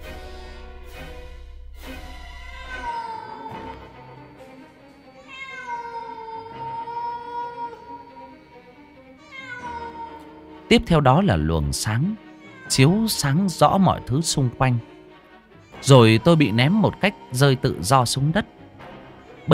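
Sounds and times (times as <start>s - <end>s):
black cat meowing: 2.5s - 4.1s, 5.1s - 8.5s, 9.2s - 10.4s, 12.1s - 14.9s, 15.6s - 18.6s, 19.2s - 19.5s
speech: 10.7s - 14.9s, 15.8s - 18.5s.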